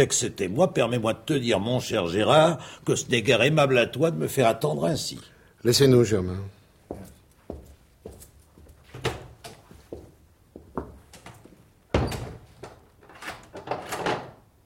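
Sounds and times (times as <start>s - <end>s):
speech: 0.0s - 7.1s
door shutting with a solid thud: 11.9s - 12.5s.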